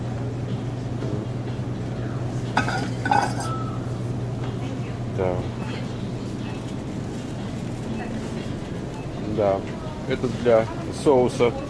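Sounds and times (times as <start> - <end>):
low room hum: 0.0 - 11.6
dishes clinking as they are handled: 2.5 - 3.8
speech: 5.2 - 5.6, 9.4 - 11.6.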